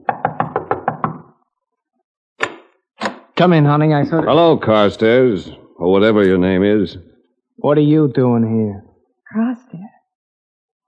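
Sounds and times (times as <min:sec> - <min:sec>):
firm knocks on a wooden door: 0:00.0 - 0:01.3
speech: 0:03.4 - 0:09.9.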